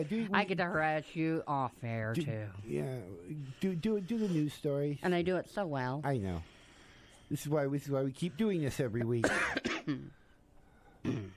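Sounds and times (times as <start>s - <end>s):
speech: 0.0s - 6.5s, 7.3s - 10.2s, 11.0s - 11.3s
rough raspy smoker's cough with phlegmy throatiness: 9.1s - 10.2s, 11.0s - 11.3s.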